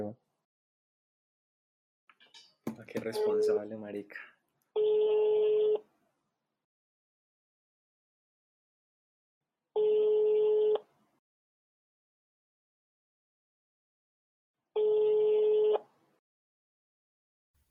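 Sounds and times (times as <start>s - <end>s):
speech: 2.8s - 5.9s
ringback tone of a telephone call ringing out unanswered: 3.2s - 3.6s, 4.8s - 5.8s, 9.8s - 10.7s, 14.8s - 15.8s.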